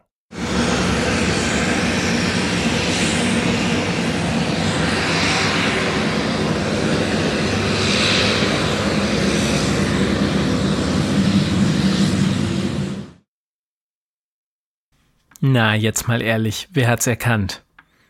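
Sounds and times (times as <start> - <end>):
aircraft jet engine running: 0.3 - 13.2
speech: 15.4 - 17.6.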